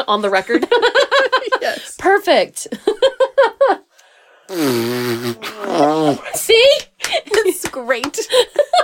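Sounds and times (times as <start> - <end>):
speech: 0.0 - 3.5, 4.6 - 8.8
squelching arm fart made by hand: 4.5 - 6.4.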